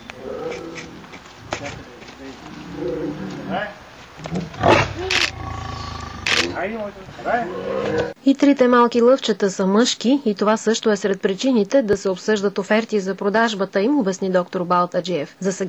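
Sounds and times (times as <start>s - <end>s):
lioness roaring and growling: 0.0s - 6.6s, 7.3s - 8.2s
murmuring: 0.0s - 8.2s
camera shutter clicks: 6.2s - 6.6s
speech: 6.6s - 15.6s.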